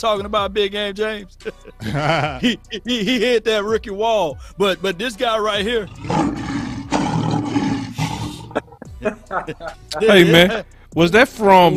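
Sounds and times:
speech: 0.0 - 6.4, 9.0 - 11.7
laughter: 1.5 - 2.8, 8.0 - 10.6
lion roaring with deep rumbling growls: 5.9 - 8.8.

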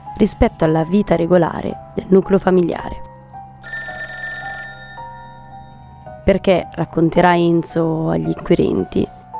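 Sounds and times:
speech: 0.2 - 3.0, 6.3 - 9.2
telephone ringing with a buzzy electronic trill: 3.6 - 6.0.

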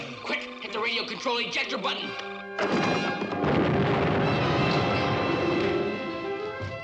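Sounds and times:
speech: 0.8 - 3.2
debris crackling: 2.5 - 6.3
bomb explosion: 2.6 - 6.0.

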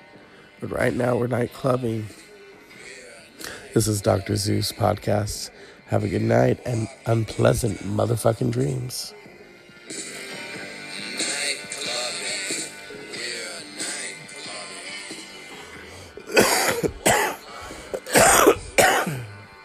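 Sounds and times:
speech: 0.6 - 2.2, 3.7 - 9.2
loud harsh coughs: 16.3 - 19.4
raspy throat clearing: 16.3 - 19.4.

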